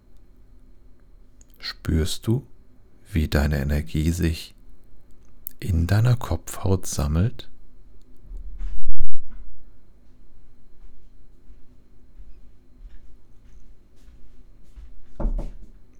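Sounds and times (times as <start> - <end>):
speech: 1.7 - 2.5, 3.1 - 4.6, 5.6 - 7.5
sharp loud knocks on a door: 15.2 - 15.6.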